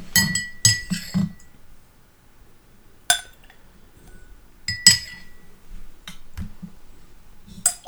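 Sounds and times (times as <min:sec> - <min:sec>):
spoon clinking against a whiskey glass of bourbon: 0:00.1 - 0:01.5, 0:04.0 - 0:05.5, 0:07.6 - 0:07.8.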